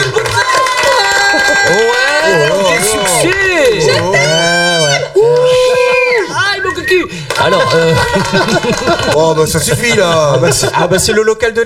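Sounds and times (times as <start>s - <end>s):
studio audience cheering and shouting: 0.0s - 9.6s
laughter: 0.1s - 3.1s, 6.7s - 11.6s
speech: 8.2s - 11.6s.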